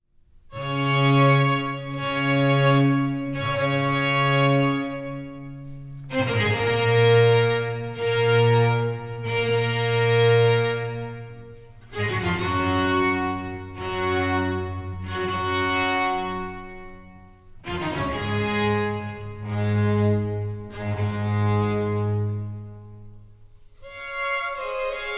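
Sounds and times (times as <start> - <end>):
cello concerto in G major slow movement: 0.5 - 25.1.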